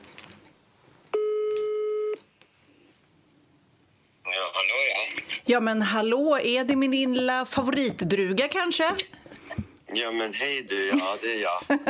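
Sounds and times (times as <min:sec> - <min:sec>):
faint noise: 0:00.0 - 0:11.8
telephone ringback tone of an outgoing call: 0:01.2 - 0:02.2
speech: 0:05.5 - 0:09.2, 0:10.0 - 0:11.8.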